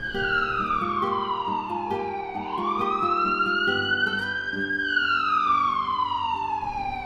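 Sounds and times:
ambulance siren wailing: 0:00.0 - 0:07.0.

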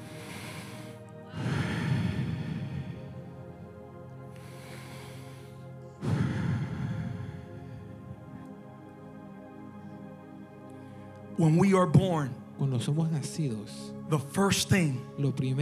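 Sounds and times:
slow deliberate breathing: 0:00.0 - 0:11.4
speech: 0:11.4 - 0:15.6.

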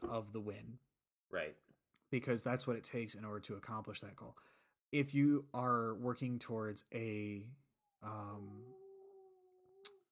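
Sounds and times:
speech: 0:00.1 - 0:08.8
pet dog howling: 0:08.4 - 0:09.9.

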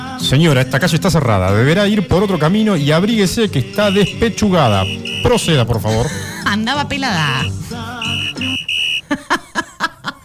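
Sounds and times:
speech: 0:00.3 - 0:08.2
rhythmic choppy bursts: 0:00.4 - 0:09.0
laughter: 0:01.6 - 0:06.6, 0:08.1 - 0:10.2
shrill whistle blasts: 0:03.3 - 0:05.8, 0:07.3 - 0:09.1.

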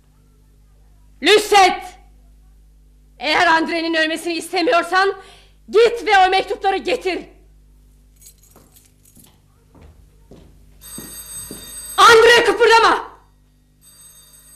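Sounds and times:
speech: 0:03.6 - 0:07.3, 0:12.4 - 0:13.1
telephone bell ringing: 0:10.8 - 0:14.5.

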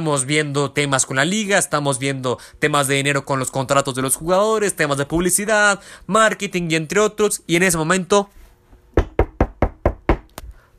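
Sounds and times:
speech: 0:00.0 - 0:08.4
knocking on an office door: 0:08.9 - 0:10.3.

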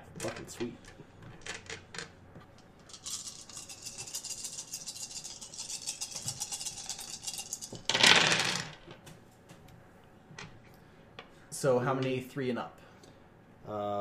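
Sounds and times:
speech: 0:00.2 - 0:01.0, 0:11.6 - 0:12.8, 0:13.7 - 0:14.0
several dice clattering across a hard surface: 0:02.9 - 0:09.0.

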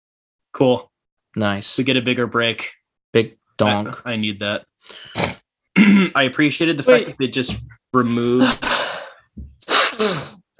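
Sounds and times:
speech: 0:00.6 - 0:08.7
loud sneeze with sharp inhale: 0:09.7 - 0:10.4.

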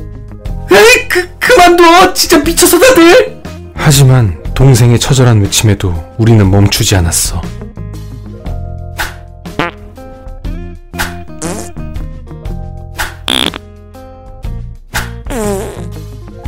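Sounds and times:
speech: 0:01.2 - 0:07.6
several people farting in turn: 0:09.6 - 0:09.9, 0:11.4 - 0:11.8, 0:13.3 - 0:13.6, 0:15.3 - 0:16.0.

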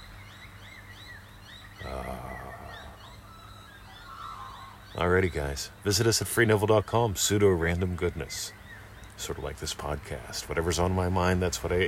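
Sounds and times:
birds chirping and whistling outdoors: 0:00.0 - 0:11.8
speech: 0:04.9 - 0:08.6, 0:09.2 - 0:11.8.

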